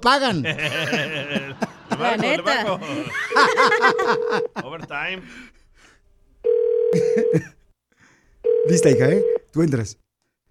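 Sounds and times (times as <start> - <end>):
speech: 0.0 - 5.6, 6.4 - 7.6, 8.6 - 10.0
laughter: 0.3 - 5.3, 6.9 - 7.6
telephone ringback tone of an unanswered call: 3.3 - 4.6, 6.4 - 7.4, 8.4 - 9.4.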